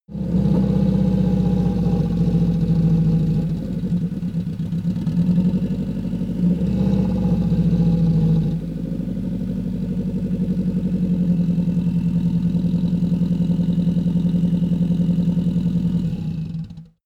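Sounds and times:
VW T1 van arriving slowly, idling and stopping: 0.2s - 17.0s.

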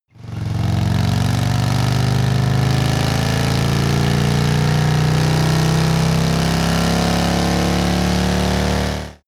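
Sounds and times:
Harley motorcycle accelerating: 0.1s - 9.2s.

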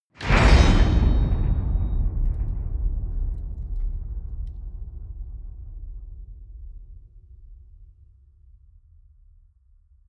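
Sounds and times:
enormous metal gate clang: 0.2s - 3.4s.

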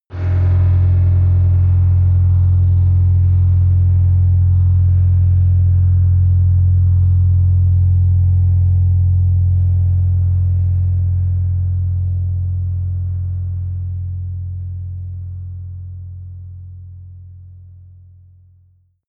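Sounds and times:
active protective energy shield low: 0.1s - 13.6s.

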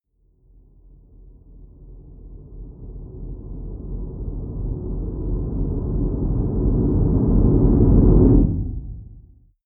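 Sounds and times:
short deep noise synth rumble: 2.5s - 9.5s.

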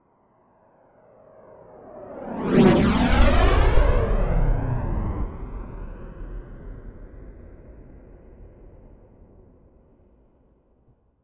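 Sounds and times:
FA-18 Hornet military jet turbine flyby right to left fast close: 1.9s - 7.8s.

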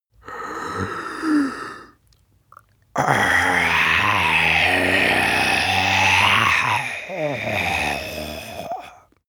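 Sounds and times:
zombie male growl with throat inhale and exhale: 3.0s - 9.0s.

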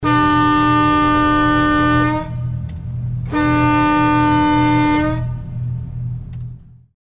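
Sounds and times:
fire fighting boat horn: 0.0s - 6.2s.

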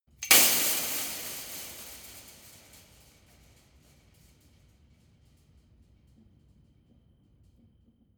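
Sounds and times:
long metal impact on fence: 0.2s - 4.4s.

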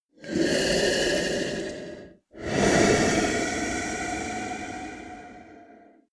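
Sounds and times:
monster snore breath: 0.1s - 6.1s.

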